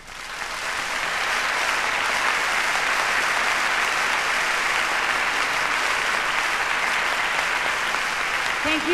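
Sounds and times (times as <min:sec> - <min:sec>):
large audience applause for an orchestra's string section: 0:00.0 - 0:08.9.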